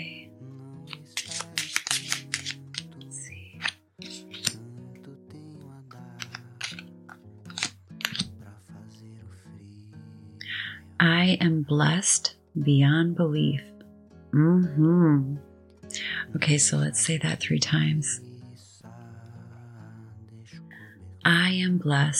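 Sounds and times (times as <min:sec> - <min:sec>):
soft music: 0:00.0 - 0:22.1
deck of cards being shuffled: 0:00.9 - 0:04.6, 0:06.2 - 0:08.4
speech: 0:11.0 - 0:13.7, 0:14.3 - 0:15.5, 0:16.3 - 0:18.3, 0:21.5 - 0:22.1.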